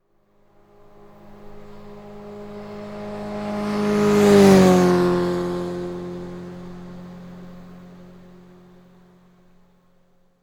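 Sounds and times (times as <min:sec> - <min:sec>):
motorcycle passing by: 0:00.6 - 0:09.6.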